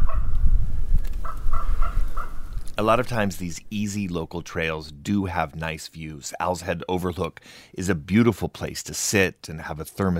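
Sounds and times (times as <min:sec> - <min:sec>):
steady low rumble: 0:00.0 - 0:05.6
two ravens calling overhead above a forested trail: 0:01.2 - 0:04.6
speech: 0:02.8 - 0:10.1.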